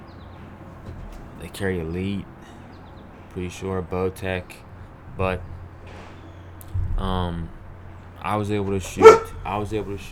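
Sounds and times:
speech: 1.4 - 2.6, 3.4 - 6.0, 7.0 - 7.6, 8.2 - 10.1
dog barking: 8.7 - 10.1.

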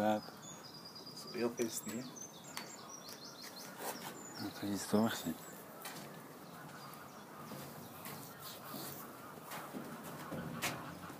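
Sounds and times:
speech: 0.0 - 0.4, 1.4 - 2.2, 4.4 - 5.5
noisy outdoor background: 0.0 - 11.1
wild geese honking: 3.7 - 11.1.

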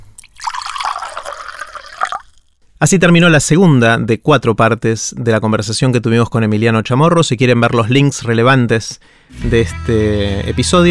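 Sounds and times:
water pouring into a glass: 0.0 - 2.6
speech: 2.8 - 10.8.

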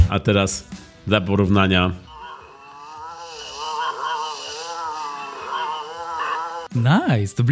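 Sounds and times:
speech: 0.2 - 2.1, 6.8 - 7.4
movie-style monster roar sound effect: 2.0 - 6.8.

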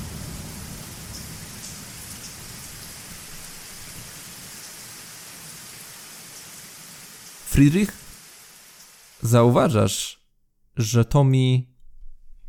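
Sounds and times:
low rumbling thunder: 0.0 - 4.6
steady rain of a thunderstorm: 0.0 - 9.8
speech: 7.6 - 8.0, 9.2 - 10.2, 10.8 - 11.7.

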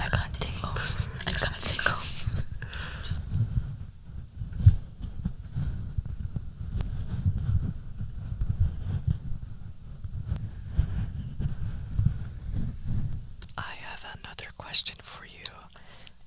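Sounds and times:
microphone being handled and rubbed: 0.0 - 15.6.

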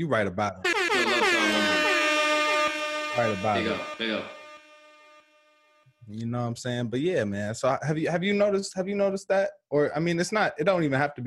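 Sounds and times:
speech: 0.0 - 1.2, 3.2 - 4.4, 6.1 - 11.2
loud air horn blasts: 0.6 - 5.3.

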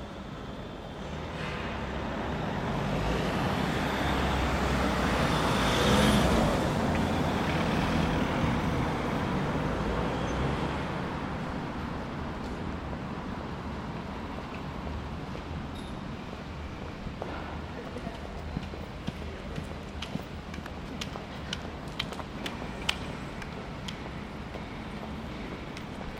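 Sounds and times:
low rumble of traffic on a London street corner: 0.0 - 26.1.

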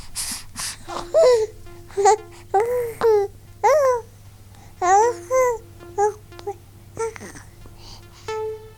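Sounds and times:
faint steady low hum: 0.0 - 8.7
baby babbling and cooing: 0.8 - 7.6.

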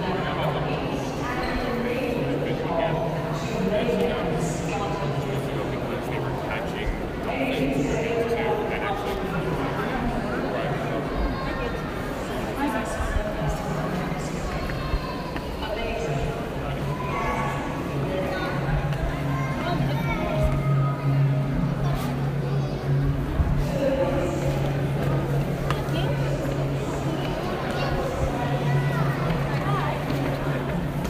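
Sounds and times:
crowded hubbub of dense overlapping voices: 0.0 - 31.0.

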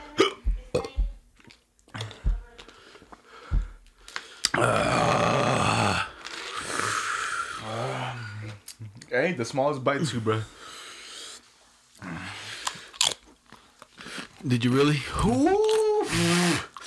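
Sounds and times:
short sharp hiccups: 0.2 - 1.0
loud harsh noisy vocal sound: 4.5 - 8.3
speech: 4.6 - 4.9, 9.3 - 10.6, 14.4 - 16.7.

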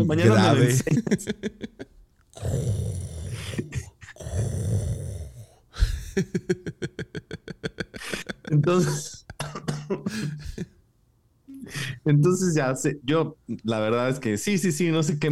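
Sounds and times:
speech: 0.0 - 2.8, 8.7 - 9.2, 12.1 - 15.3
laughter: 0.2 - 2.0, 5.8 - 10.7
loud low snoring: 2.4 - 5.6.

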